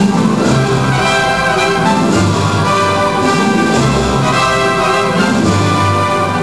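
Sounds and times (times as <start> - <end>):
victory music: 0.0 - 6.4.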